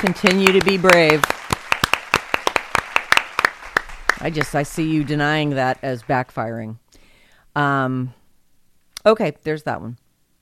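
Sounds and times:
speech: 0.0s - 1.4s, 4.2s - 6.8s, 7.6s - 8.2s, 9.0s - 10.0s
few people applauding: 0.0s - 6.2s.

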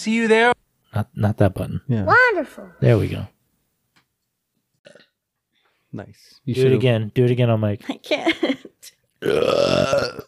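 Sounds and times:
speech: 0.0s - 3.4s, 5.9s - 10.2s
loud burp into the microphone: 4.8s - 5.2s, 9.2s - 10.2s
faint breath or hiss: 5.5s - 5.9s.

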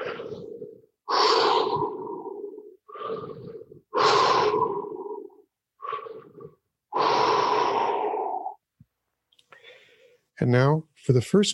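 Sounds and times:
loud circular breathing in and out: 0.0s - 8.6s, 9.5s - 10.3s
speech: 10.4s - 11.5s.

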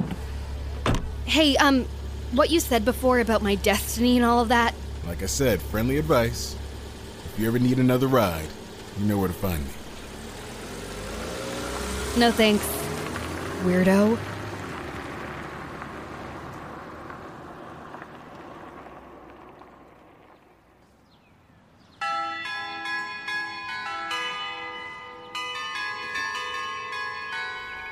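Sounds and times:
speech: 1.3s - 6.6s, 7.4s - 9.8s, 12.2s - 12.8s, 13.6s - 14.3s
low rain-like noise: 4.6s - 21.7s
doorbell chime ringing: 22.0s - 27.9s.

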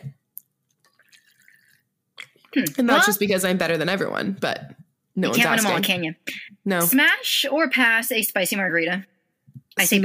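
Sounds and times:
sipping water from an insulated bottle: 0.7s - 2.9s
speech: 2.5s - 9.1s, 9.8s - 10.0s.

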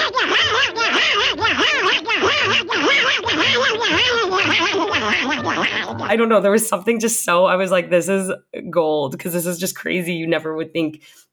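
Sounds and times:
voice imitating a cartoon duck in raspy nasal quacking babble: 0.0s - 6.1s
speech: 5.6s - 11.3s.

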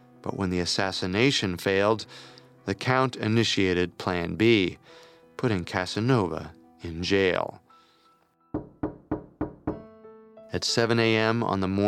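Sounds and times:
speech: 0.2s - 7.6s, 8.5s - 8.7s, 10.5s - 11.8s
firm knocks on the wooden door of a room: 8.6s - 10.0s.

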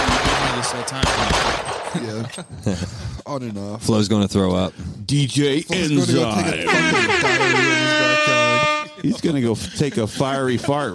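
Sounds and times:
gunfire bursts: 0.0s - 2.2s
speech: 0.8s - 8.4s, 9.0s - 10.9s
laughter: 2.0s - 3.2s, 5.7s - 10.9s.

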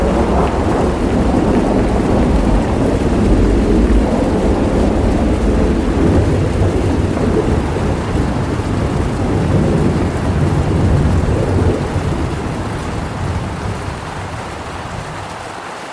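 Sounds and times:
thunder rolling: 0.0s - 15.4s
heavy rain: 0.0s - 15.9s
rushing river water: 0.0s - 15.9s.

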